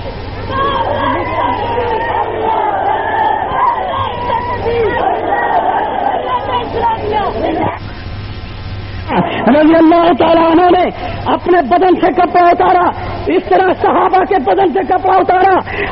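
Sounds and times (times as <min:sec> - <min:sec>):
crowd chanting slogans at a rally: 0:00.5 - 0:07.8
speech: 0:09.5 - 0:15.9.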